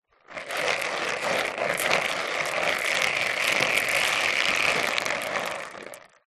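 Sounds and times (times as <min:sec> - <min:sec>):
plastic toy bingo balls spinning and swirling in a plastic tub: 0:00.0 - 0:06.2.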